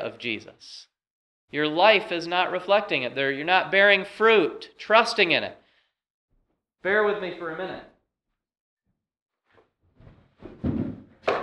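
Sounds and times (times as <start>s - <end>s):
speech: 0.0s - 0.9s, 1.5s - 5.6s, 6.8s - 7.9s
sturdy four-legged cushioned chair scraping and bumping across a hard floor: 10.0s - 11.4s
chair set down with a sharp knock: 10.4s - 11.4s.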